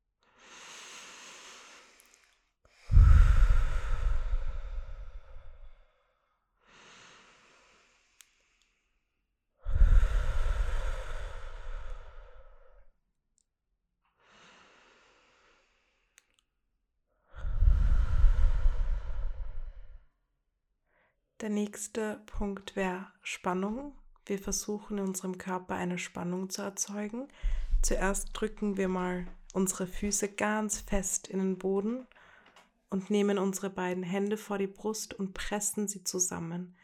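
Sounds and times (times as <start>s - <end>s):
slow deep breaths in and out with heavy sighing exhales: 0.2s - 13.0s, 14.2s - 16.4s, 17.2s - 20.1s, 27.3s - 28.4s, 32.1s - 32.7s
speech: 21.4s - 32.2s, 32.9s - 36.8s.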